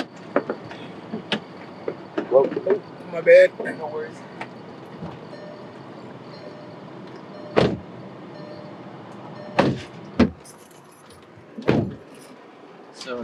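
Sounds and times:
steady low rumble: 0.0 - 13.2
speech: 2.3 - 4.3
clunks and thumps of people climbing out of a parked car: 7.4 - 7.9, 9.4 - 12.2.

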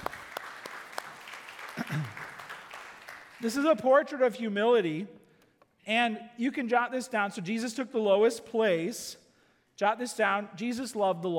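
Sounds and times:
audience applauding: 0.0 - 3.5
speech: 1.9 - 2.2, 3.4 - 5.2, 5.8 - 9.2, 9.8 - 11.3.

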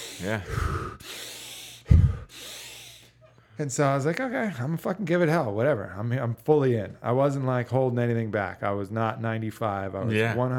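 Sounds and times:
person breathing forcefully with gasping inhale and rushing exhale: 0.0 - 3.2
speech: 0.2 - 1.1, 3.6 - 10.5.

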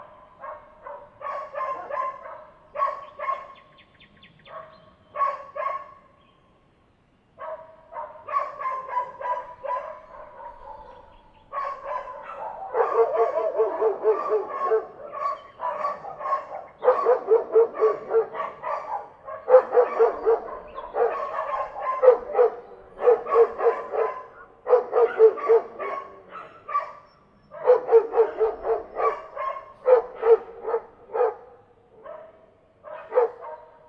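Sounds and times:
dog barking: 0.0 - 3.6, 4.4 - 6.1, 7.4 - 33.8.

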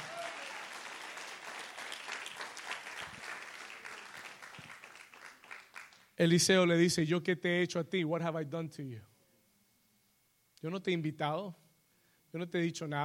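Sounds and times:
large crowd applauding loudly: 0.0 - 6.1
speech: 6.2 - 9.1, 10.6 - 11.6, 12.3 - 13.0.

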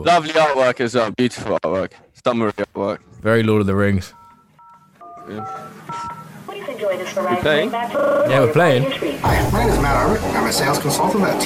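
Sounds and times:
speech: 0.0 - 4.2, 5.3 - 6.1, 6.8 - 11.4
steady electronic dual-pitched telephone ringtone tones: 4.1 - 6.3, 7.9 - 8.6.

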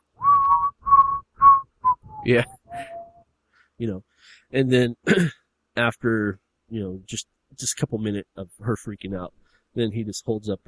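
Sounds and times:
man whistling a short tune: 0.2 - 3.3
speech: 2.2 - 2.9, 3.8 - 10.6.

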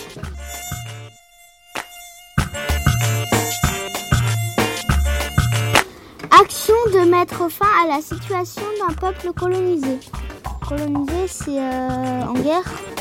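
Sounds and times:
dense swarm of mosquitoes buzzing: 0.0 - 5.8
speech: 7.2 - 12.9.

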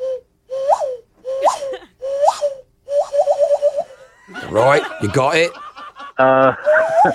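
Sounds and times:
person vocally imitating a quail call: 0.5 - 4.1, 6.2 - 7.1
laughter: 4.0 - 7.1
speech: 4.5 - 5.6, 6.2 - 7.1.

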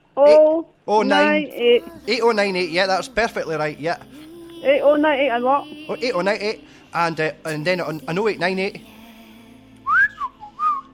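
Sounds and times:
speech: 0.2 - 8.9
person whistling a short sliding tune: 9.8 - 10.9.

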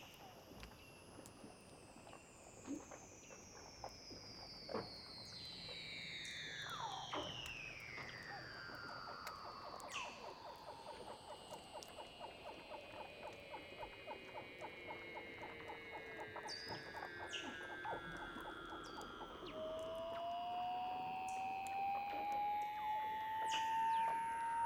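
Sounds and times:
Weddell seals giving slow descending pulsed trills underwater: 5.2 - 24.6.

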